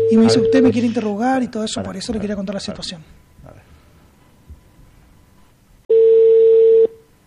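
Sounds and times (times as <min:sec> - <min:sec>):
phone call ringing tone over a Bluetooth connection: 0:00.0 - 0:01.0, 0:05.9 - 0:07.0
quiet low noise: 0:00.0 - 0:07.2
speech: 0:00.1 - 0:03.2.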